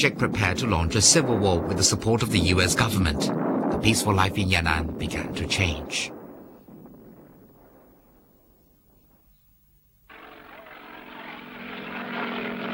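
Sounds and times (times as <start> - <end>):
speech: 0.0 - 6.2
propeller airplane flying: 10.1 - 12.7.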